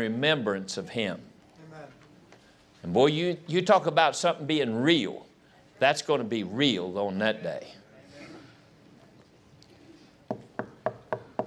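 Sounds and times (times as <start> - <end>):
speech: 0.0 - 1.3, 2.8 - 7.8
faint room murmur: 0.0 - 11.4
firm knocking on a door: 10.3 - 11.4.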